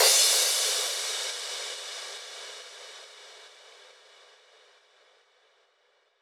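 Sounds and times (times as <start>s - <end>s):
Manhattan Kit crash cymbal in G sharp minor: 0.0s - 4.6s.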